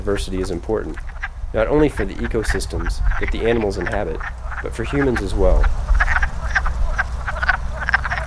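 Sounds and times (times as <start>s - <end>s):
speech: 0.0s - 5.9s
chorus of wood frogs calling with clucking croaks: 0.0s - 8.2s
steady low rumble: 0.0s - 8.2s.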